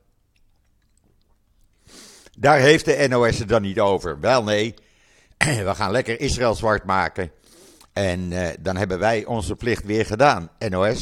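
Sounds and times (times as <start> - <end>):
person sipping water: 0.0 - 2.4, 7.4 - 8.0
speech: 2.4 - 4.8, 5.4 - 7.4, 8.0 - 11.0.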